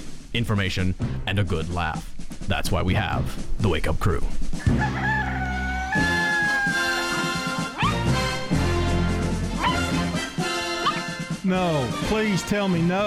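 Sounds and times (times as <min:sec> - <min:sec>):
loud busy music of a morning radio show opening: 0:00.0 - 0:13.0
speech: 0:00.4 - 0:05.2, 0:06.0 - 0:06.2, 0:11.5 - 0:13.0
dog barks and yelps: 0:07.7 - 0:08.2, 0:09.6 - 0:10.2, 0:10.8 - 0:11.2.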